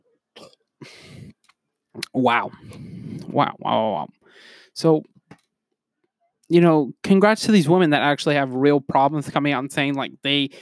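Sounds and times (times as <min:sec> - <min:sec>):
loud burp: 0:00.4 - 0:00.7
speech: 0:02.2 - 0:05.1, 0:06.5 - 0:10.6.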